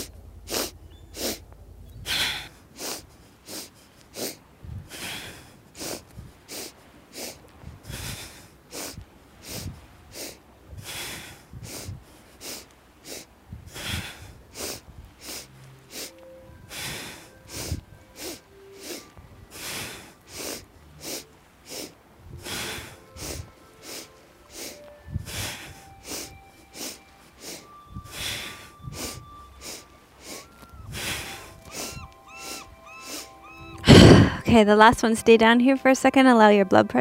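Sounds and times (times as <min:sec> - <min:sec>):
forceful sharp nasal breathing during an exercise routine: 0:00.0 - 0:34.5
speech: 0:34.5 - 0:36.9.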